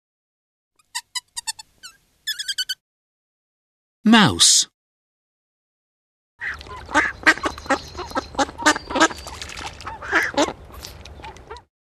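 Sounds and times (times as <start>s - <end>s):
speech: 4.1s - 4.8s
duck quacking: 6.4s - 9.2s, 9.8s - 10.6s.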